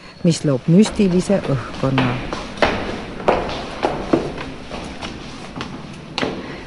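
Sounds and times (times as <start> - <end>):
speech: 0.2 - 2.4
footsteps climbing Art Deco cast concrete spiral staircase in northern Germany: 0.4 - 6.6.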